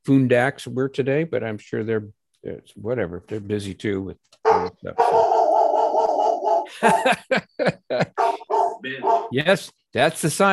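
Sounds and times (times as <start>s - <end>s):
speech: 0.0s - 5.3s, 6.8s - 10.5s
guard dog whining: 4.5s - 6.7s, 8.2s - 9.3s
guard dog barking: 4.5s - 7.1s, 8.2s - 9.4s
laughter: 6.7s - 9.2s.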